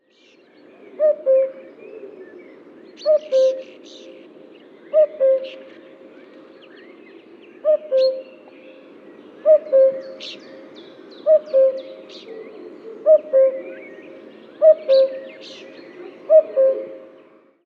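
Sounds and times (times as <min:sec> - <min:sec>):
common cuckoo Cuculus canorus: 0:00.9 - 0:02.4, 0:03.0 - 0:04.2, 0:04.9 - 0:05.7, 0:07.6 - 0:08.4, 0:09.4 - 0:10.4, 0:11.2 - 0:17.4.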